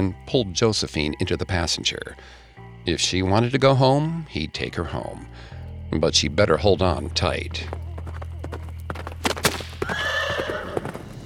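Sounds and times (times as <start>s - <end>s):
speech: 0.0s - 7.8s
horse hooves galloping on cobblestones: 7.1s - 11.2s
horse neighing: 9.8s - 11.2s.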